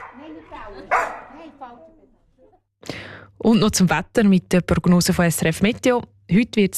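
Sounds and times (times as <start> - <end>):
dog barking and yelping: 0.0 - 1.6
speech: 0.2 - 6.7.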